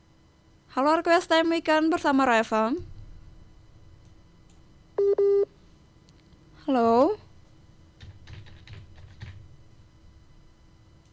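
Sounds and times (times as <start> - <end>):
speech: 0.8 - 2.9, 6.7 - 7.2
telephone call tone beeps while dialing: 5.0 - 5.5.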